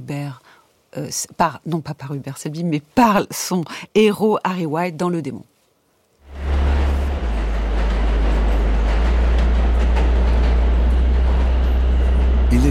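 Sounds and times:
speech: 0.1s - 5.5s
metro train rushing through a tunnel: 6.2s - 12.6s.

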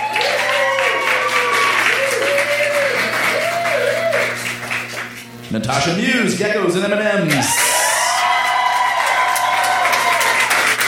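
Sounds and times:
cheers and whoops: 0.0s - 4.4s, 7.4s - 10.8s
crowd applauding: 0.0s - 5.2s, 7.3s - 10.8s
speech: 5.5s - 7.6s.

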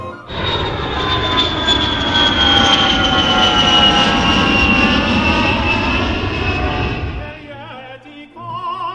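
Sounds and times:
airplane engine roaring with high whine: 0.0s - 7.9s
faint wavering noises: 0.3s - 7.5s.

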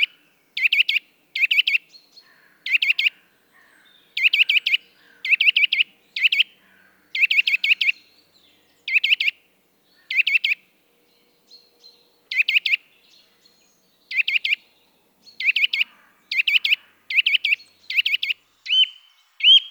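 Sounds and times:
Eurasian nuthatch song in mild winter weather: 0.0s - 19.7s.

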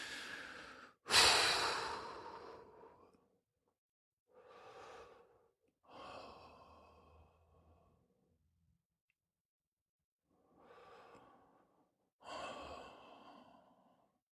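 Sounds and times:
person taking slow deep breaths: 0.0s - 3.2s, 4.3s - 8.1s, 10.3s - 14.2s.

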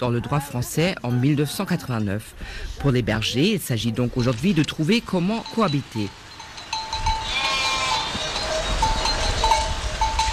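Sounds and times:
speech: 0.0s - 6.2s
hiss: 2.2s - 9.5s
sheep from a flock bleating on an alpine pasture: 7.2s - 9.0s.

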